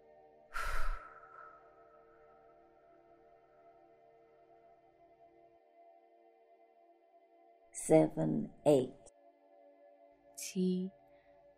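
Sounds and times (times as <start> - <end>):
single deep breathy exhale: 0.5 - 1.7
speech: 7.8 - 9.0, 10.5 - 11.0.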